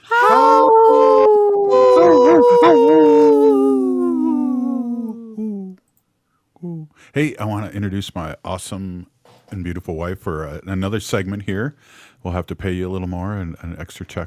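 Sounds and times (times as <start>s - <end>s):
wolf howling: 0.0s - 5.4s
speech: 7.1s - 14.2s.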